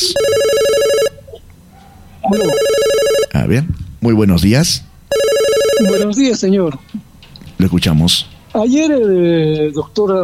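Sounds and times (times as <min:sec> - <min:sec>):
telephone ringing with an incoming call: 0:00.0 - 0:01.2, 0:02.3 - 0:03.4, 0:05.1 - 0:06.1
speech: 0:02.3 - 0:02.8, 0:03.4 - 0:04.9, 0:05.8 - 0:10.2.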